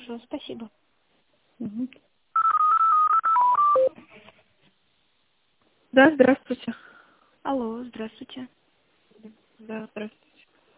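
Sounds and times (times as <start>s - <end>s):
speech: 0.1s - 0.8s, 1.6s - 2.1s, 5.9s - 6.8s, 7.4s - 8.6s, 9.2s - 10.2s
telephone keypad tones dialing a phone number: 2.4s - 4.0s.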